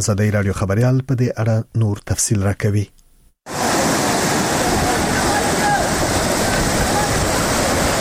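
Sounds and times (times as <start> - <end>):
speech: 0.0 - 3.6
floodwater of the Sonak mountain stream rushing between Nari district and Asadabad: 3.5 - 7.9.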